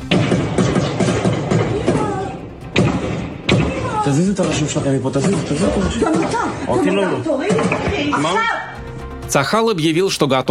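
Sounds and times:
gunshots: 0:00.0 - 0:06.4
commotion: 0:00.0 - 0:09.4
speech: 0:04.1 - 0:08.7, 0:09.3 - 0:10.4.

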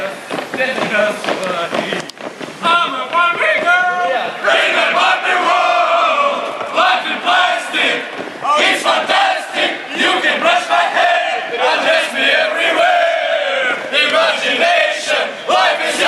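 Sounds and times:
soldiers marching: 0:00.0 - 0:16.0
speech: 0:00.6 - 0:02.1
large group of soldiers singing a pop hit in chorus: 0:04.4 - 0:16.0.

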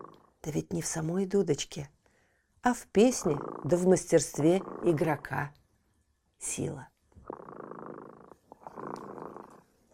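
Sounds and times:
cat purring: 0:00.0 - 0:00.4, 0:03.0 - 0:05.5, 0:07.2 - 0:09.9
speech: 0:00.4 - 0:02.0, 0:02.6 - 0:05.6, 0:06.4 - 0:06.9.

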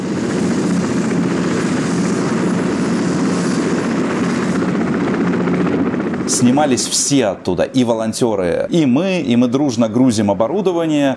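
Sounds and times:
helicopter with rotors running at a base: 0:00.0 - 0:11.1
speech: 0:06.4 - 0:11.1.

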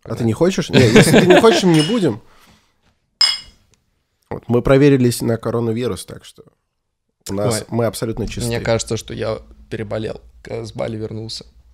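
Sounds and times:
speech: 0:00.0 - 0:02.4, 0:04.3 - 0:06.6, 0:07.2 - 0:11.6
laughter: 0:00.7 - 0:02.0
glasses clinking in a toast: 0:01.5 - 0:02.2, 0:03.2 - 0:03.6.

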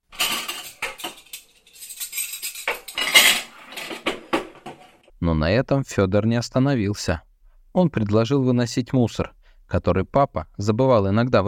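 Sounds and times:
clean dishes and cutlery clattering as they are unloaded from a dishwasher: 0:00.1 - 0:05.1
speech: 0:05.2 - 0:11.4.

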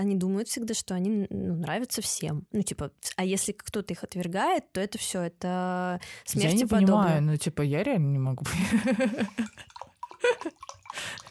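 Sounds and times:
speech: 0:00.0 - 0:11.2
laughter: 0:08.5 - 0:09.6
water poured into a glass: 0:08.7 - 0:11.2.

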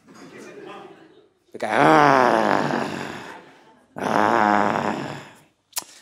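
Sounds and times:
laughter: 0:00.0 - 0:01.8, 0:02.8 - 0:04.2
speech: 0:01.5 - 0:02.8
person voicing a low rough growl: 0:01.6 - 0:03.4, 0:04.0 - 0:05.4.

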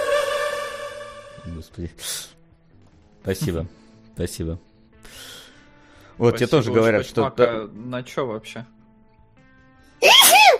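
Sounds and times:
speech: 0:01.6 - 0:02.4, 0:03.2 - 0:05.3, 0:06.2 - 0:08.8
person sneezing: 0:10.0 - 0:10.5.

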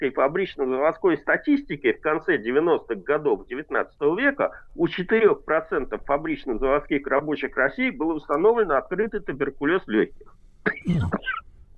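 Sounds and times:
speech: 0:00.0 - 0:11.5
person sneezing: 0:10.7 - 0:11.4.

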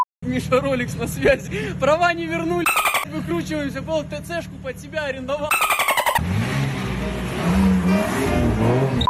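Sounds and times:
speech: 0:00.2 - 0:05.7
short harmonic burst: 0:02.7 - 0:03.1, 0:05.5 - 0:06.2
red BMW sports car engine revving inside a shopping mall: 0:05.5 - 0:09.0.

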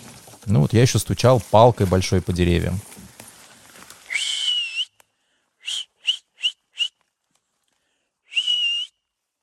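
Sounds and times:
speech: 0:00.5 - 0:02.9
person whistling loudly to scare off bears: 0:04.1 - 0:05.0, 0:05.6 - 0:07.0, 0:08.3 - 0:09.0.

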